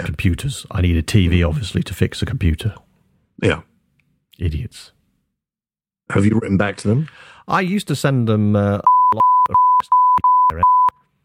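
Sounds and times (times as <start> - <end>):
speech: 0.1 - 2.8, 3.4 - 3.7, 4.4 - 5.0, 6.1 - 10.8
censor bleep tone: 8.9 - 11.0.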